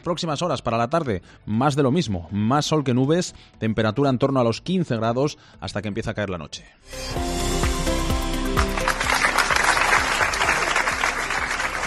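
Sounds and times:
speech: 0:00.0 - 0:07.5
applause from a sizable gathered crowd: 0:08.4 - 0:11.8.

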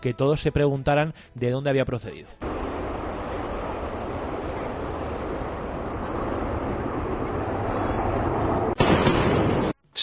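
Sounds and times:
speech: 0:00.0 - 0:02.6
heavy rumbling wash of sound: 0:02.4 - 0:08.8
steady wide roar: 0:02.4 - 0:08.8.

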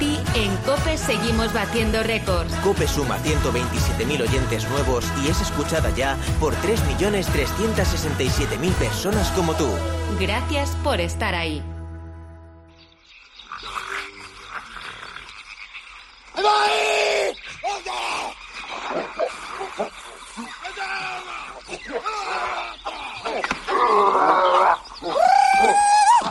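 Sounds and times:
speech: 0:00.4 - 0:11.8
prehistoric humans roaring, groaning and shouting while fighting over fire: 0:06.4 - 0:10.3, 0:16.4 - 0:26.3
shrill screams of prehistoric humans fighting over fire: 0:16.3 - 0:19.2, 0:20.4 - 0:26.3.

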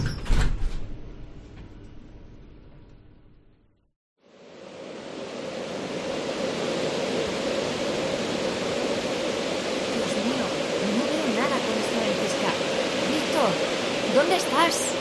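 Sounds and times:
heavy sliding door rumbling shut: 0:00.0 - 0:03.4
steady broadband roar: 0:04.6 - 0:15.0.

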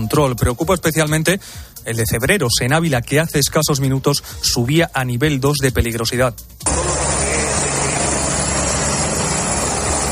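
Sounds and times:
speech: 0:00.0 - 0:06.8
firefighting helicopter roaring while loading water: 0:06.6 - 0:10.1.

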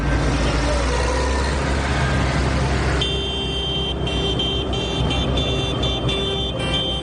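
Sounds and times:
traffic engine drone during a farmers' protest march in Madrid: 0:00.0 - 0:07.0
vehicle horns blaring during a farmers' protest march in Madrid: 0:02.9 - 0:07.0.

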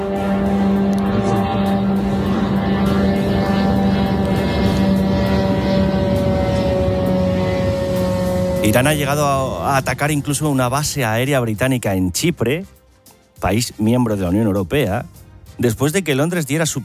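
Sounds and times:
Shahed drone engine buzzing overhead: 0:00.0 - 0:11.9
speech: 0:08.7 - 0:12.8, 0:13.4 - 0:16.8.

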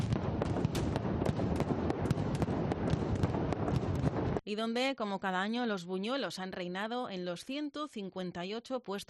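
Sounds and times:
mascletà firecracker barrage exploding: 0:00.0 - 0:04.4
speech: 0:04.5 - 0:09.0.

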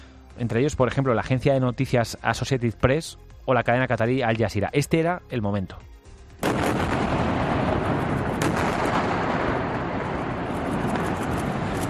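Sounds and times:
speech: 0:00.4 - 0:06.8
powerful blast of a building explosion: 0:06.4 - 0:11.8.

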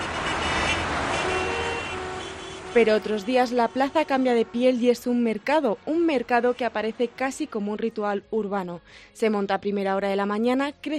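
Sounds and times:
car horn: 0:00.0 - 0:04.8
dense city traffic at the Plaza de España in Valladolid: 0:00.0 - 0:07.6
speech: 0:02.8 - 0:10.9.

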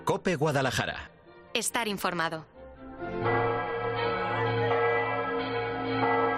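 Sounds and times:
speech: 0:00.2 - 0:03.4
large cathedral bells pealing: 0:03.2 - 0:06.3.

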